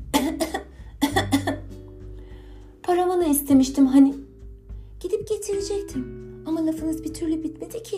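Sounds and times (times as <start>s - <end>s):
person coughing: 0.1s - 1.7s
speech: 2.9s - 4.2s, 5.0s - 7.9s.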